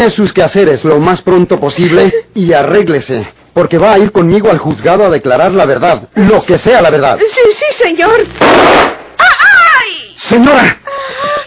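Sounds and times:
speech: 0:00.0 - 0:09.0, 0:10.2 - 0:11.4
loud gunshot: 0:08.4 - 0:09.2
person wailing: 0:09.2 - 0:10.1.

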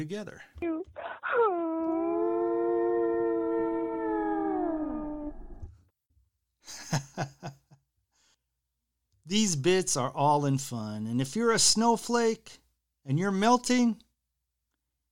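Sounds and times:
speech: 0:00.0 - 0:02.0, 0:06.6 - 0:07.6, 0:09.3 - 0:14.0
blue whale call: 0:01.4 - 0:05.6.

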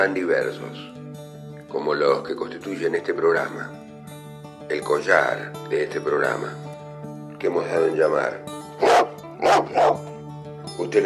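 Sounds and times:
speech: 0:00.0 - 0:01.0, 0:01.7 - 0:03.8, 0:04.7 - 0:06.7, 0:07.4 - 0:10.1, 0:10.8 - 0:11.0
black dog barking: 0:08.8 - 0:10.1.

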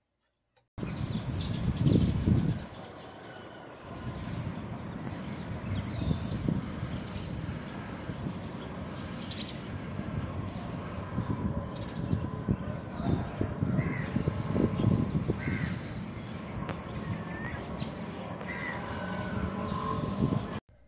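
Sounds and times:
constant hiss of insects: 0:00.8 - 0:20.6
low rumbling swells: 0:04.0 - 0:20.6
crows cawing at sunrise: 0:13.7 - 0:14.2, 0:15.4 - 0:15.9, 0:18.4 - 0:19.5.

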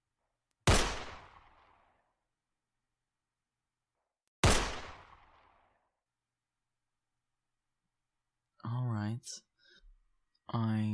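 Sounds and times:
gunshots from a gun fired at a shooting range: 0:00.6 - 0:02.0, 0:04.4 - 0:05.8
speech: 0:09.1 - 0:09.5, 0:10.5 - 0:10.9.

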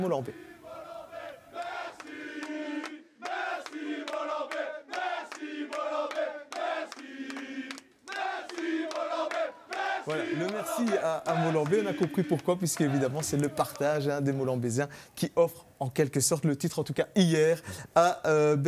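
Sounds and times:
speech: 0:00.0 - 0:00.6, 0:10.1 - 0:18.6
football players chanting in unison in a locker room: 0:00.2 - 0:14.1.

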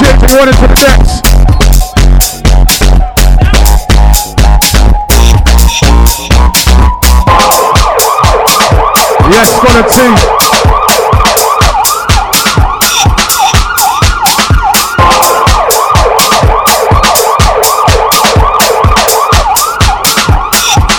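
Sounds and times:
steady pounding percussive beat: 0:00.0 - 0:20.9
speech: 0:00.4 - 0:01.3, 0:09.4 - 0:10.6
fast-yelping emergency siren wailing: 0:07.3 - 0:20.9.

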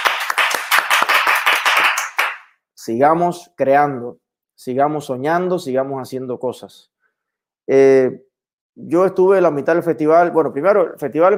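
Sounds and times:
applause from a small group: 0:00.0 - 0:02.5
speech: 0:02.8 - 0:06.9, 0:07.7 - 0:11.3.

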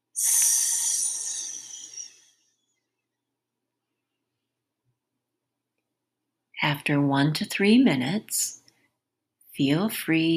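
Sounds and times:
speech: 0:00.2 - 0:00.4, 0:06.6 - 0:08.6, 0:09.6 - 0:10.3
long nasal inhale and exhale in a breathing exercise: 0:00.2 - 0:02.4.

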